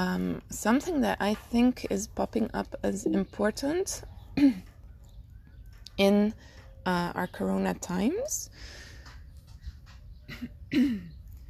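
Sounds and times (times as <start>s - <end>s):
speech: 0.0s - 4.7s, 6.0s - 8.8s, 10.3s - 11.1s
dry cough: 10.3s - 11.2s.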